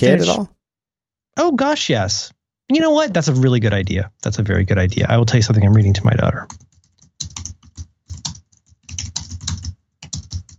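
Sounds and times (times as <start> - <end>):
speech: 0.0 - 0.6, 1.4 - 7.4
brisk typing on a computer keyboard: 6.5 - 10.5.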